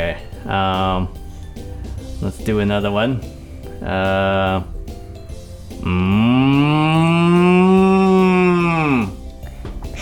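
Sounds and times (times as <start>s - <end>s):
speech: 0.1s - 1.2s, 2.2s - 4.8s, 5.8s - 7.6s
cow mooing: 5.8s - 9.2s.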